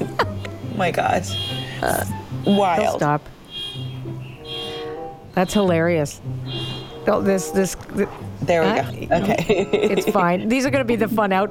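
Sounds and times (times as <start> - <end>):
laughter: 0.0 - 0.5, 9.1 - 10.6
speech: 0.8 - 3.4, 5.4 - 11.5
car horns honking outside: 1.2 - 2.8, 3.5 - 5.8, 6.4 - 7.6.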